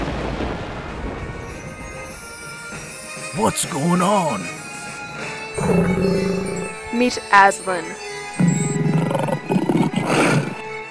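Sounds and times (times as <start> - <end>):
speech: 3.4 - 4.6, 5.6 - 8.1
lion roaring: 5.6 - 7.0, 8.4 - 10.7.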